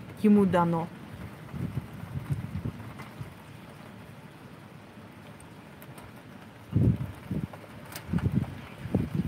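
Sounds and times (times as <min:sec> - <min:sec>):
low rolling thunder: 0:00.0 - 0:03.7, 0:06.6 - 0:09.2
steady rain: 0:00.0 - 0:09.2
speech: 0:00.2 - 0:01.8.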